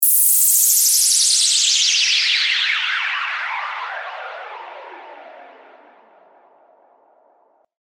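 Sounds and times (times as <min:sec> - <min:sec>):
downward whoosh: 0:00.0 - 0:07.2.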